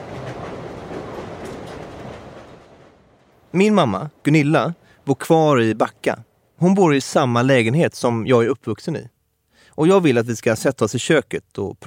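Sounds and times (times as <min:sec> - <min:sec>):
wheels clattering on rail track: 0:00.0 - 0:03.6
moving train rumble heard from inside a carriage: 0:00.0 - 0:06.6
speech: 0:03.6 - 0:09.1, 0:09.8 - 0:11.8.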